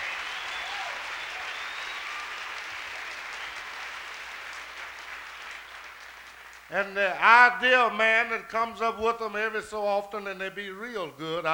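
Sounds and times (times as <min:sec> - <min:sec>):
audience applause for an organ player: 0:00.0 - 0:06.9
speech: 0:06.7 - 0:11.5.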